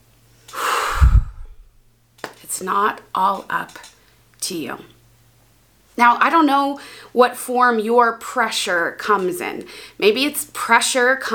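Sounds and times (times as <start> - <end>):
deep breath: 0.5 - 1.8
speech: 2.6 - 5.0, 6.0 - 11.3.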